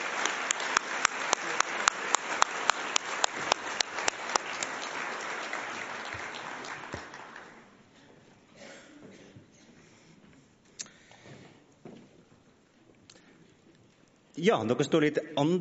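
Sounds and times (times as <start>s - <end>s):
audience applause as guests walk onto a stage: 0.0s - 7.8s
speech: 14.4s - 15.5s.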